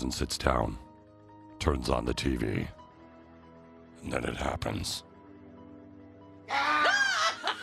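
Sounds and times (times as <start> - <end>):
speech: 0.1 - 0.9, 1.6 - 2.8, 4.0 - 5.1
woman gasping cries: 6.5 - 7.6
woman screaming in fright: 6.5 - 7.6.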